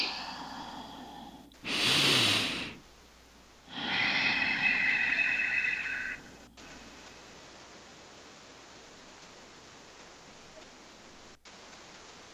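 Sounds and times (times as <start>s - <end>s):
slow deliberate breathing through the nose: 0.0s - 7.4s.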